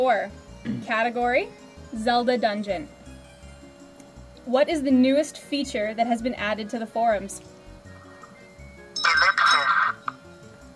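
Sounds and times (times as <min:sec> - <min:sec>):
speech: 0:00.0 - 0:03.0, 0:04.4 - 0:07.5
quiz answer bell ringing during a trivia quiz: 0:08.7 - 0:09.9.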